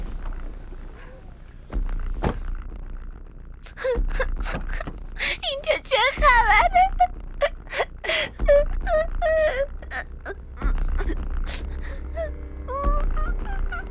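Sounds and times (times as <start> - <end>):
steady low rumble: 0.0 - 13.9
people sobbing and whimpering with gasps and wails: 3.6 - 13.9.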